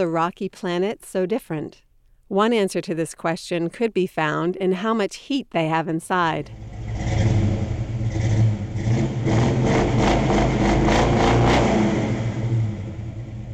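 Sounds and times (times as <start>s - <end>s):
speech: 0.0s - 6.7s
car engine revving: 6.5s - 13.5s.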